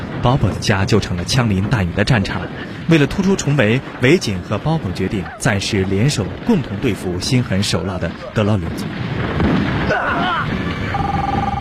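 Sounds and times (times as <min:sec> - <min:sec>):
dense rumbling background: 0:00.0 - 0:11.5
speech: 0:00.2 - 0:10.6
mobile phone ringing with a repeated electronic tone: 0:10.9 - 0:11.5.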